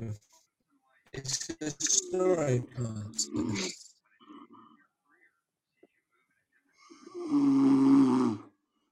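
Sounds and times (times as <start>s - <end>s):
speech: 0.0s - 0.4s, 1.1s - 3.8s
dog snoring: 7.0s - 8.5s.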